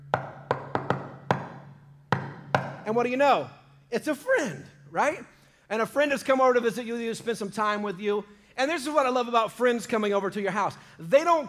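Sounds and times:
knocking on a door: 0.1s - 2.8s
speech: 2.9s - 11.4s.

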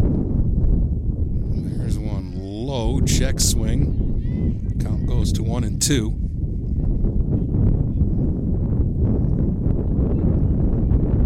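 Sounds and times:
wind gusting outdoors at a softball game: 0.0s - 11.2s
speech: 2.8s - 4.0s, 4.8s - 6.2s.

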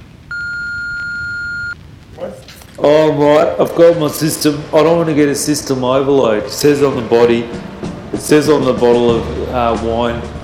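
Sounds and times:
faint hiss: 0.0s - 10.4s
call-waiting beep on a phone line: 0.3s - 1.8s
speech: 2.2s - 10.4s.

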